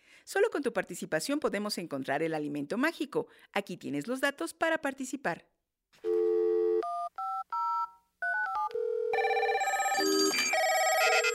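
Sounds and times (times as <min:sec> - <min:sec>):
speech: 0:00.3 - 0:05.6
electronic telephone keypad dual-pitched beeps: 0:06.8 - 0:11.3
busy sustained electronic ringing tone: 0:07.7 - 0:11.3.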